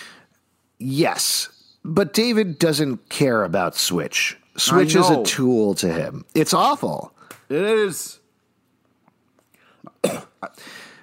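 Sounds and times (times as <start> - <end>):
speech: 0.8 - 8.2, 10.0 - 10.9
person coughing: 9.9 - 10.6
faint breathing: 10.6 - 11.0.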